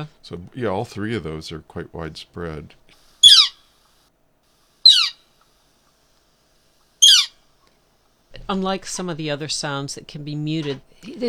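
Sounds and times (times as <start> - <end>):
speech: 0.0 - 2.8, 8.5 - 11.2
Northern Flicker calling: 2.8 - 4.0, 4.8 - 5.6, 6.8 - 7.5.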